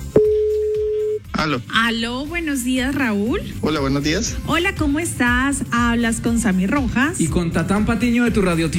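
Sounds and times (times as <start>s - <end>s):
busy low sound: 0.2s - 1.2s
telephone line tone while a radio host calls a listener: 0.2s - 1.2s
speech: 1.4s - 8.7s.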